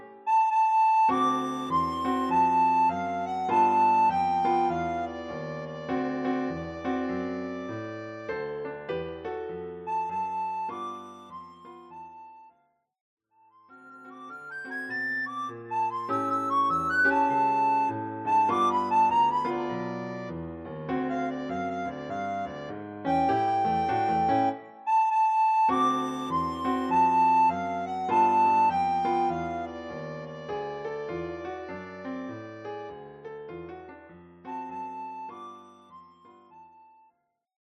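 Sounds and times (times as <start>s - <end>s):
soprano recorder playing blues: 0.3s - 8.2s, 9.8s - 12.6s, 13.5s - 20.4s, 21.0s - 30.9s, 34.5s - 37.1s.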